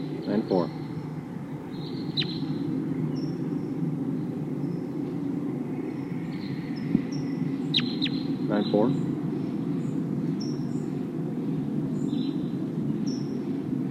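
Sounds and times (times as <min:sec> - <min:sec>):
steady low rumble: 0:00.0 - 0:13.8
wild bird flight calls: 0:00.0 - 0:13.8
speech: 0:08.6 - 0:09.0.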